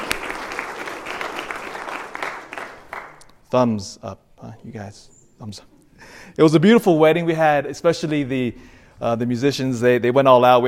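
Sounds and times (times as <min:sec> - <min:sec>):
room full of people applauding: 0:00.0 - 0:03.2
speech: 0:03.5 - 0:10.6.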